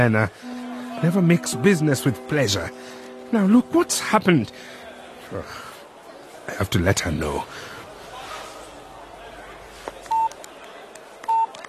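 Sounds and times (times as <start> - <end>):
speech: 0.0 - 5.7, 6.5 - 7.7
faint murmuring background: 0.0 - 11.2
phone keypad beeps from dialing: 10.1 - 10.3, 11.3 - 11.6.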